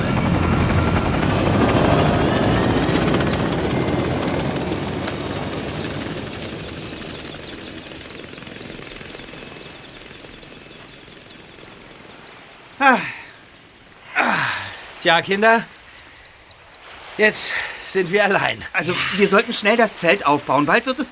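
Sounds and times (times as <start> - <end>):
rhythmic helicopter rotor thumping: 0.0 - 14.1
helicopter engine roaring with turbine whine: 0.0 - 17.8
speech: 15.0 - 15.8, 17.2 - 21.1.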